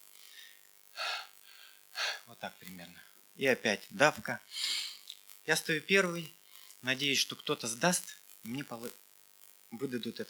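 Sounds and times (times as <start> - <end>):
faint steady hiss: 0.0 - 10.2
person imitating labored gasping breathing of someone in a crushing crowd: 0.2 - 2.3, 4.5 - 5.1
speech: 2.4 - 4.8, 5.5 - 9.0, 9.7 - 10.2.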